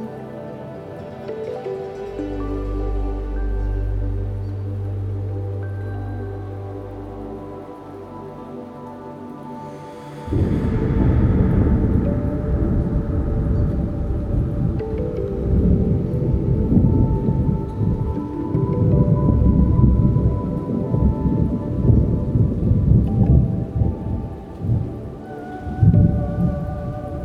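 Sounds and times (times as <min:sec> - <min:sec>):
rain falling: 0:00.0 - 0:27.2
rolling thunder during rainstorm: 0:10.3 - 0:27.2.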